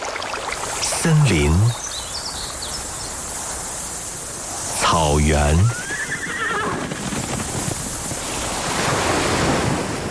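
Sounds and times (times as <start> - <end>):
ocean waves: 0.0 - 10.0
speech: 1.0 - 1.9, 5.1 - 5.9
high horse-like whinny: 5.7 - 7.0.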